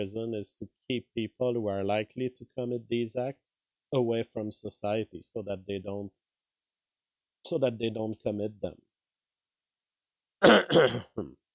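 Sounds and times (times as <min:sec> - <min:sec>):
speech: 0:00.0 - 0:06.2, 0:07.4 - 0:08.9, 0:10.4 - 0:11.4
person coughing and clearing throat: 0:10.4 - 0:11.4.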